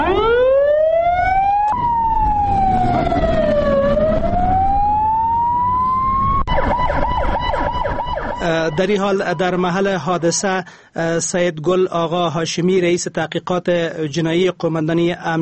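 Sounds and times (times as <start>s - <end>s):
ambulance sirens at the scene of an attack in Kabul: 0.0s - 9.8s
speech: 8.8s - 15.3s.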